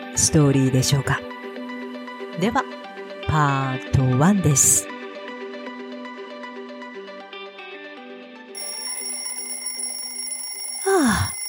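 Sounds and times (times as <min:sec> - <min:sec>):
speech: 0:00.2 - 0:01.3, 0:02.4 - 0:04.9
electronic alarm clock ringing: 0:08.6 - 0:11.4.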